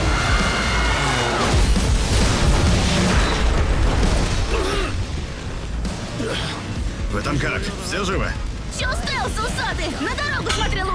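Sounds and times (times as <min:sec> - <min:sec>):
crackling debris: 0:00.2 - 0:08.8
loud explosion with low rumble: 0:01.4 - 0:06.2
speech: 0:08.0 - 0:10.9.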